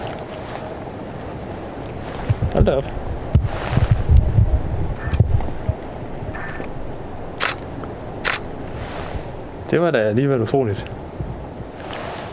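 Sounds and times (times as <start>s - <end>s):
gusty outdoor wind rumble: 0.0s - 12.3s
speech: 2.5s - 3.1s, 9.7s - 11.0s
camera shutter clicks: 7.4s - 7.6s, 8.2s - 8.5s.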